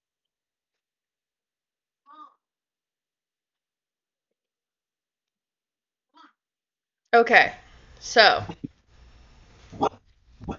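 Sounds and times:
speech: 7.1s - 8.7s
dog barking near a window: 9.7s - 10.5s.

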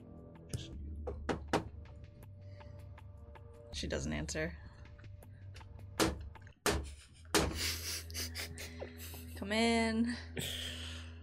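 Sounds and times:
sharp knocks on a door: 1.0s - 1.8s, 6.0s - 7.6s
speech: 3.8s - 4.7s, 9.5s - 10.6s.

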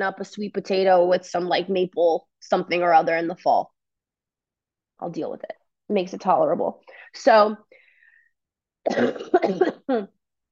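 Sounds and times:
speech: 0.0s - 3.8s, 5.0s - 7.7s, 8.8s - 10.2s
person coughing: 8.9s - 10.1s.

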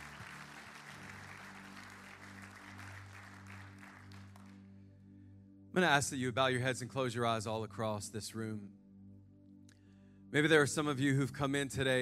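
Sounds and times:
people at a church service applauding: 0.0s - 4.6s
sustained low keyboard chord: 0.0s - 11.9s
speech: 5.8s - 8.8s, 10.3s - 11.9s.

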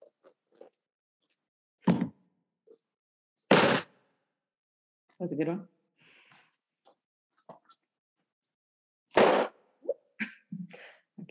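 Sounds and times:
book slapped and flapped to mimic explosions: 3.5s - 3.9s
speech: 5.2s - 5.8s.

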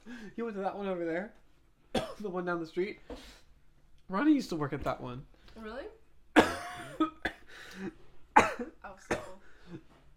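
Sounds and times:
speech: 0.2s - 3.4s, 4.1s - 6.0s, 7.8s - 8.0s
person coughing: 2.0s - 2.2s, 6.4s - 9.8s.

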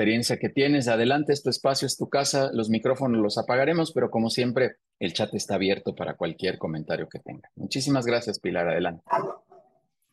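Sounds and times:
speech: 0.0s - 9.4s
small dog barking and yipping: 9.1s - 9.7s.

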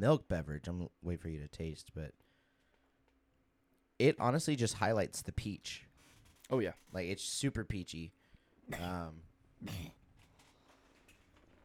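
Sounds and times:
speech: 0.0s - 2.2s, 4.0s - 5.9s, 6.5s - 10.0s
person coughing: 8.7s - 10.0s
throat clearing: 8.7s - 10.0s.

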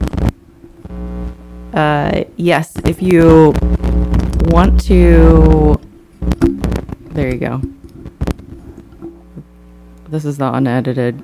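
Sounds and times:
loud broadband thumps or crackles: 0.0s - 1.4s, 2.7s - 9.5s
steady low electrical hum with harmonic lines: 0.0s - 11.2s
speech: 1.7s - 3.9s, 4.5s - 6.4s, 7.2s - 7.7s, 10.1s - 11.2s.

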